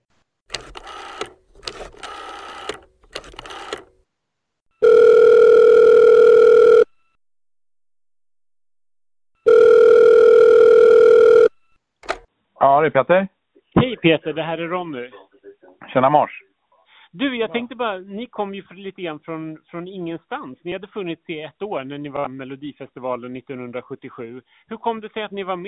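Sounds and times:
quick electronic beeps of a number being dialed: 4.8 - 6.9, 9.5 - 11.6
long steady telephone ringing tone: 4.8 - 7.2, 9.4 - 11.7
speech: 12.8 - 13.3, 14.0 - 15.2, 15.9 - 16.4, 17.2 - 25.6.

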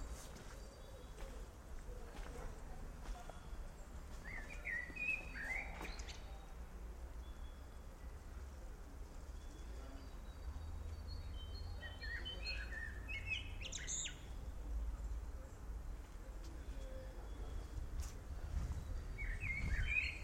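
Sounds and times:
birds chirping: 0.0 - 20.2
wind buffeting outdoors: 17.8 - 20.2.

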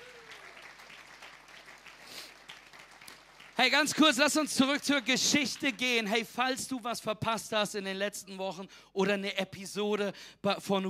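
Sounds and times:
crowd audience applause: 0.0 - 5.9
speech: 3.6 - 10.8.

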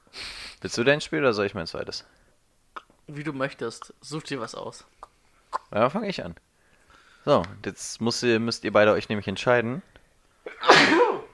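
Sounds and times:
speech: 0.6 - 2.2, 3.1 - 5.0, 5.7 - 6.4, 7.2 - 9.9
loud sneeze with sharp intake: 10.5 - 11.3.

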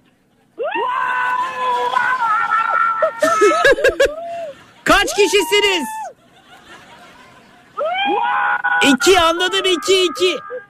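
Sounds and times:
laughter: 0.1 - 10.6
several people screaming while running: 0.6 - 6.2, 7.8 - 10.6
speech: 5.2 - 6.0, 8.9 - 10.5.

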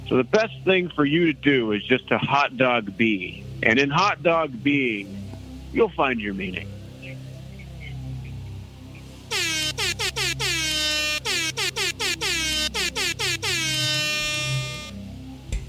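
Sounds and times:
speech: 0.1 - 7.2
air horn salute blasts: 9.3 - 15.0.

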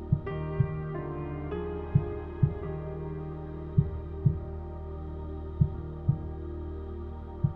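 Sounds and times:
soft sustained musical drone: 0.0 - 7.5
slow steady heartbeat thumping in lub-dub pairs: 0.1 - 0.9, 2.0 - 2.6, 3.8 - 4.5, 5.6 - 6.4, 7.4 - 7.5.

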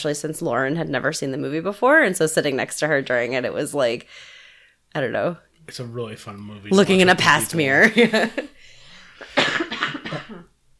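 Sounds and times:
speech: 0.0 - 8.5, 10.3 - 10.5
laughter: 6.3 - 8.6
person coughing: 9.2 - 10.5.

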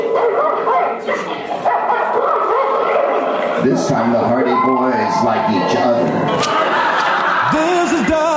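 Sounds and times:
dog barking and yipping: 0.1 - 3.4
speech: 3.7 - 6.7, 7.5 - 8.3
laughter: 5.8 - 8.3.

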